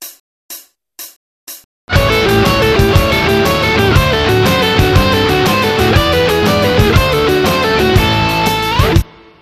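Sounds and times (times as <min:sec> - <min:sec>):
blues guitar: 0:01.9 - 0:09.4.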